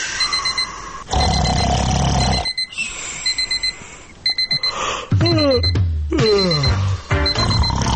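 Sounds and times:
alarm clock ringing in electronic bursts: 0:00.2 - 0:01.7, 0:02.3 - 0:05.7, 0:06.3 - 0:07.8.

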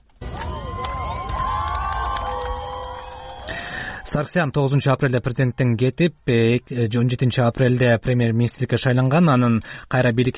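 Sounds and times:
protest rally crowd cheering and shouting in a central square: 0:00.2 - 0:05.7
speech: 0:04.1 - 0:10.3.

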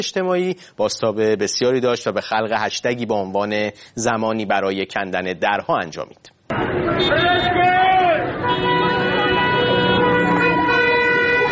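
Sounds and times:
speech: 0:00.0 - 0:07.6
car horns honking in protest: 0:06.5 - 0:11.4.

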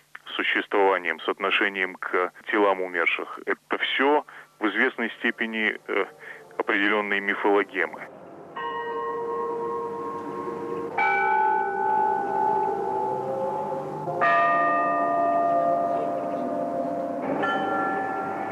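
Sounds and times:
speech: 0:00.4 - 0:08.2
church bells of Gethsemane tolling: 0:05.5 - 0:18.5.

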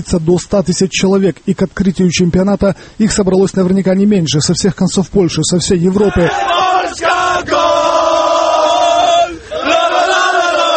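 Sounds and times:
speech: 0:00.0 - 0:07.7
large crowd of football fans roaring and chanting in a fan zone in Warsaw: 0:05.9 - 0:10.7.

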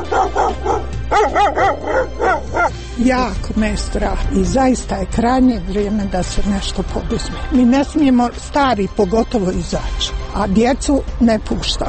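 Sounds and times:
stray dogs barking in Sarajevo: 0:00.0 - 0:02.8
speech: 0:03.0 - 0:11.8.

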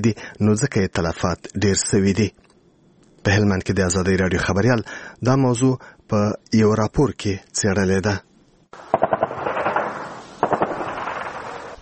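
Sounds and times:
speech: 0:00.0 - 0:02.4, 0:03.2 - 0:08.3
automatic gunfire during militant attacks: 0:08.8 - 0:11.8
heavy weapons fire during militant attacks: 0:08.8 - 0:11.8.

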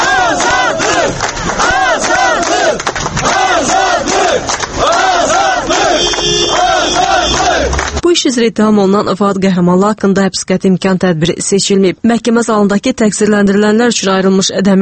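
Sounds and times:
supporters outside a courthouse chanting freedom slogans: 0:00.0 - 0:08.0
speech: 0:08.2 - 0:14.8.

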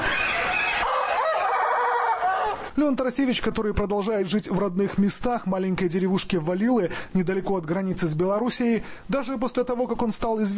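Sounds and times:
caged unusual-looking rooster from Latin America crowing: 0:00.0 - 0:02.7
speech: 0:02.8 - 0:10.5.

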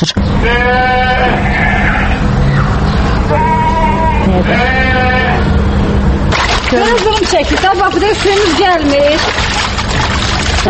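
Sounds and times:
speech: 0:00.0 - 0:01.7, 0:04.4 - 0:04.8, 0:06.7 - 0:09.6
steady low hum: 0:00.0 - 0:10.6
livestock bleating in pens outside a five-storey dormitory: 0:00.4 - 0:02.3, 0:03.3 - 0:05.5.

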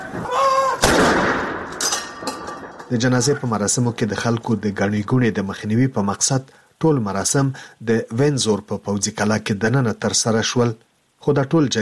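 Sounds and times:
cannon salute fired by British armed forces at a royal military funeral: 0:00.8 - 0:01.7
speech: 0:02.9 - 0:11.8.

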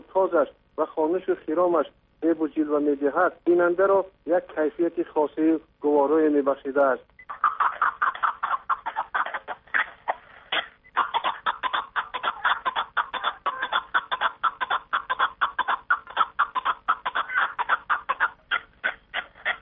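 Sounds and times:
speech: 0:00.1 - 0:07.1
partridge calling with harsh clucking notes: 0:07.2 - 0:19.6.

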